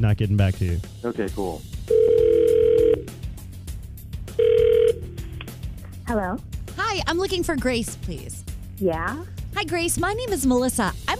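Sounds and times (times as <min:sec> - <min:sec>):
speech: 0:00.0 - 0:01.8, 0:06.1 - 0:11.1
outgoing phone call ringback tone: 0:01.9 - 0:03.1, 0:04.4 - 0:05.2.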